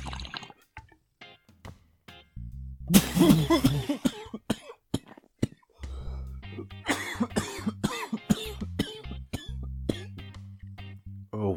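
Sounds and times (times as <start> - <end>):
speech: 2.9 - 4.4
harsh coughing: 2.9 - 5.7, 6.6 - 10.2.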